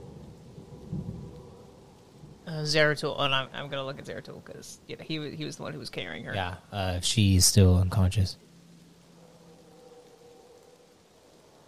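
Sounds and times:
video game thunder rumbling: 0.0 - 4.6
video game rain: 0.0 - 11.6
speech: 2.5 - 8.5.

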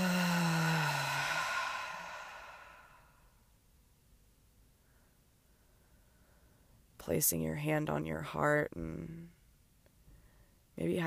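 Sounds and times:
long breath out through the mouth in a guided breathing exercise: 0.0 - 3.2
speech: 7.1 - 9.4, 10.8 - 11.0.

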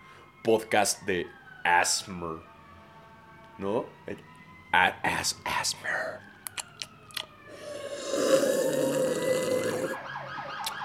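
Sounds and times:
ambulance siren passing outside: 0.0 - 10.8
speech: 0.4 - 2.5, 3.6 - 6.3.

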